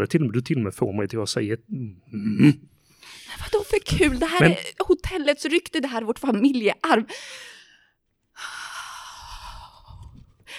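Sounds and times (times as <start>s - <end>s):
speech: 0.0s - 7.5s
deep breathing exercises: 2.7s - 3.4s, 7.1s - 10.5s.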